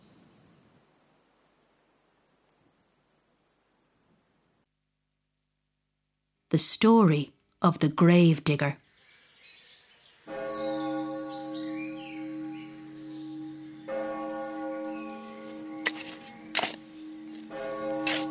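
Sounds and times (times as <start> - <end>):
faint birdsong: 0.0 - 0.9, 8.8 - 18.0
speech: 6.5 - 8.8
deep church bell tolling: 10.2 - 18.3.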